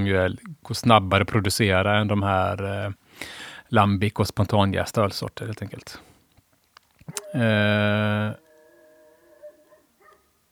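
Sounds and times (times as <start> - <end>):
speech: 0.0 - 6.1, 7.1 - 8.4
wolf howling: 7.1 - 10.3.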